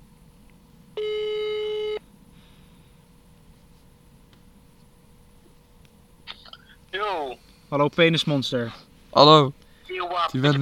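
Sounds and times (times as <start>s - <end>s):
low hiss: 0.0s - 10.6s
telephone ringback tone on speakerphone: 1.0s - 2.0s
speech: 7.7s - 9.6s, 10.3s - 10.6s.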